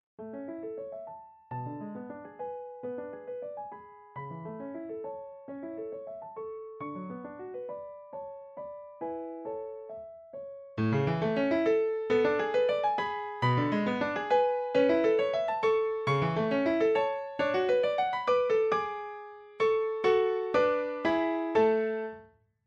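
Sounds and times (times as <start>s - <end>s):
allegro piano piece: 0.2s - 22.3s.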